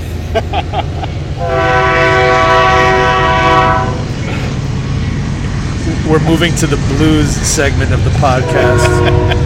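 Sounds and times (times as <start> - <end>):
continuous low rail rumble of a passing train: 0.0 - 9.4
laughter: 0.2 - 1.4, 8.5 - 9.4
speech: 0.4 - 2.0, 6.1 - 9.4
train horn blast: 1.4 - 4.1, 8.2 - 9.4.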